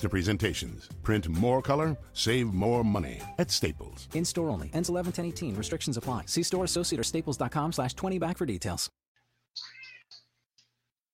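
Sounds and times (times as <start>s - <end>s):
speech: 0.0s - 9.0s
house cat meowing loudly at a dog: 9.6s - 10.2s.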